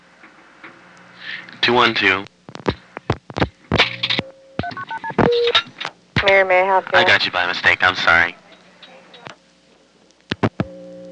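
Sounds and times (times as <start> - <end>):
speech: 1.4 - 2.4, 6.3 - 8.4
sustained telephone tone: 4.2 - 5.6, 10.6 - 11.1.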